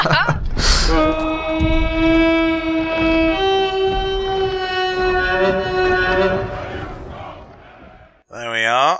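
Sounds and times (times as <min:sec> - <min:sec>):
speech: 0:00.0 - 0:00.2
spooky deep elephant horn blast: 0:01.0 - 0:08.2.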